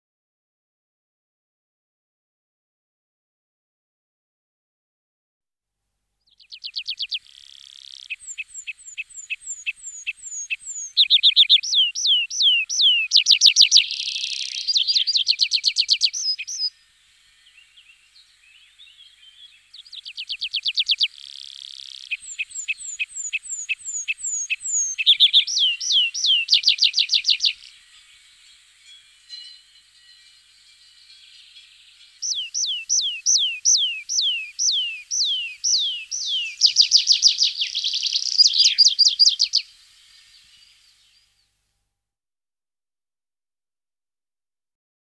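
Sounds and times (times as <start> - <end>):
tree pipit songbird singing: 6.4 - 40.9.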